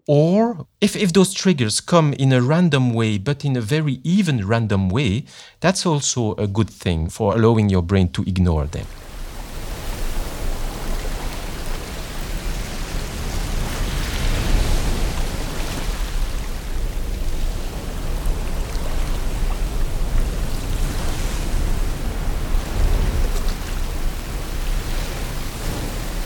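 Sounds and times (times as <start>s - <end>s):
speech: 0.0s - 9.0s
coastal surf waves on the Irish coast: 8.8s - 26.2s.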